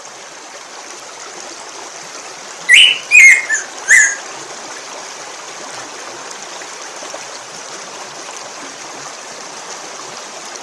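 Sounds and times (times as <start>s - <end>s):
Black-throated grosbeak whistled calls: 2.7s - 4.2s.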